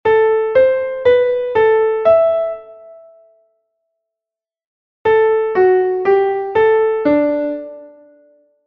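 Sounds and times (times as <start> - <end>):
classical music: 0.2 - 3.3, 5.2 - 8.5.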